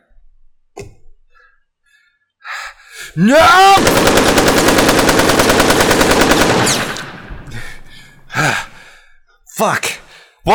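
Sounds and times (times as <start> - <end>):
speech: 3.1 - 4.9, 9.6 - 10.5
rapid gunfire: 3.6 - 7.9.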